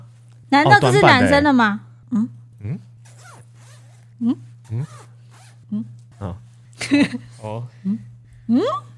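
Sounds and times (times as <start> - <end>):
steady low hum: 0.0 - 8.9
speech: 0.5 - 2.9, 4.2 - 5.1, 5.7 - 8.9
jacket zipper zipping: 3.0 - 6.3.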